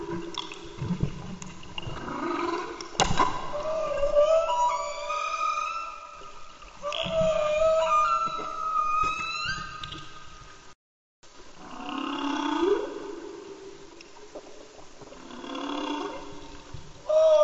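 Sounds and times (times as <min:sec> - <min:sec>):
humpback whale song in Antarctica: 0:02.0 - 0:10.7, 0:11.6 - 0:13.9, 0:15.2 - 0:17.4.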